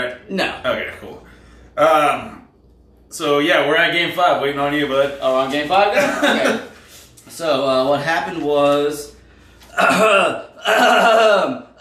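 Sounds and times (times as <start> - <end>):
speech: 0.0 - 2.4, 3.1 - 6.7, 7.3 - 9.1, 9.8 - 11.7
person clearing throat: 9.7 - 11.7.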